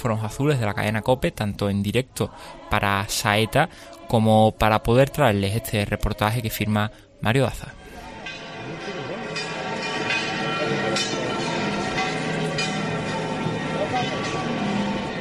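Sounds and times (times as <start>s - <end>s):
speech: 0.0s - 7.8s
murmur of crowd noise: 7.7s - 15.1s
cathedral tower bells pealing: 7.8s - 15.1s.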